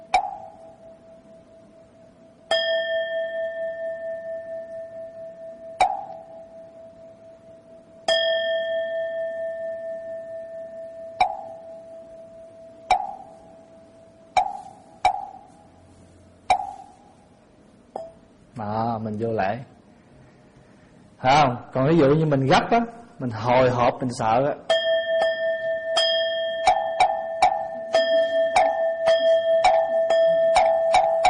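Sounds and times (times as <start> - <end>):
Buddhist temple bell struck: 2.5 - 6.7, 8.1 - 13.9, 24.7 - 31.2
speech: 18.6 - 19.7, 21.2 - 24.7.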